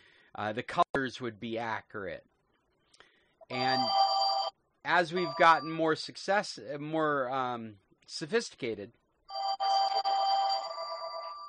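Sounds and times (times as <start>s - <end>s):
speech: 0.4s - 2.3s, 3.5s - 4.0s, 4.8s - 9.0s
phone ringtone with electronic tones: 3.5s - 4.5s, 5.1s - 5.8s, 9.3s - 11.4s.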